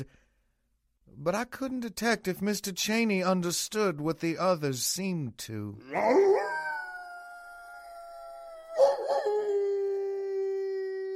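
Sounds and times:
speech: 0:00.0 - 0:00.2, 0:01.1 - 0:06.5
dog howling outside at the full moon: 0:05.8 - 0:11.1.

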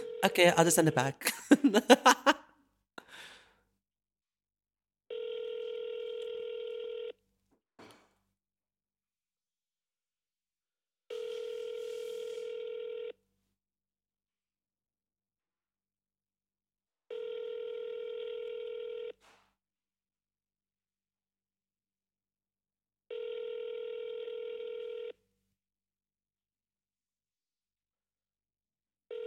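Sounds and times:
outgoing phone call ringing tone: 0:00.0 - 0:01.2, 0:05.1 - 0:07.1, 0:11.1 - 0:13.2, 0:17.1 - 0:19.2, 0:23.1 - 0:25.2
speech: 0:00.2 - 0:02.4
laughter: 0:01.2 - 0:02.4.

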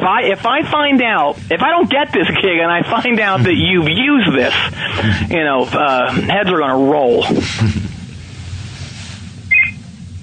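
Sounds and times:
speech: 0:00.0 - 0:07.9
low steady rumble: 0:00.0 - 0:10.2
phone electronic double chirp beep: 0:09.5 - 0:09.8.

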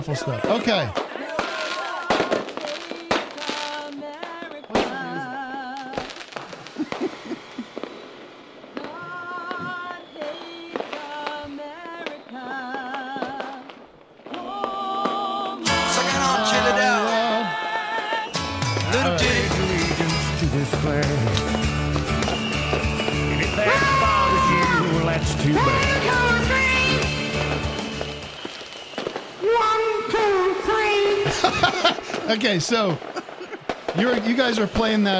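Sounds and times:
speech: 0:00.0 - 0:01.0, 0:32.4 - 0:33.1, 0:34.0 - 0:35.1
fireworks bursting: 0:00.0 - 0:35.1
laughter: 0:06.4 - 0:07.8, 0:31.1 - 0:34.2.

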